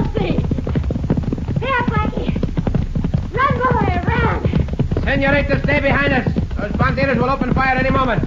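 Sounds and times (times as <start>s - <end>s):
galloping horse hooves: 0.0s - 8.2s
voices calling out: 1.6s - 2.6s, 3.2s - 8.2s
speech: 5.2s - 8.2s.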